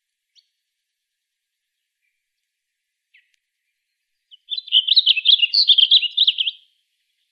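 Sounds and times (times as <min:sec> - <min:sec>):
blue grosbeak rich rapid warbling song in Arizona: 0:04.2 - 0:07.3.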